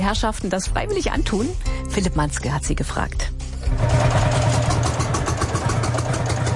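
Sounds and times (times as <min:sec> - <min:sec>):
speech: 0:00.0 - 0:04.2
old tractor engine rattling: 0:03.7 - 0:06.5.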